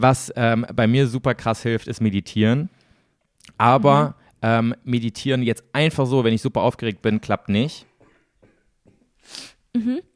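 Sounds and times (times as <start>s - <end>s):
speech: 0.0s - 2.8s, 3.5s - 7.9s, 9.3s - 10.1s
person coughing in a short fit: 7.9s - 10.0s.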